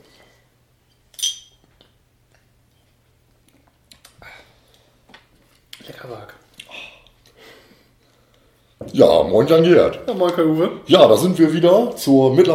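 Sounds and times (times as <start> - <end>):
glasses clinking in a toast: 1.1 - 1.6
speech: 6.0 - 6.4, 8.8 - 12.5.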